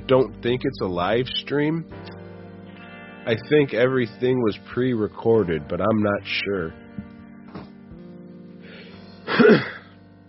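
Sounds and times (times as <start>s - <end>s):
speech: 0.1s - 2.0s, 3.2s - 6.8s, 9.5s - 9.7s
loud cough: 9.3s - 9.9s.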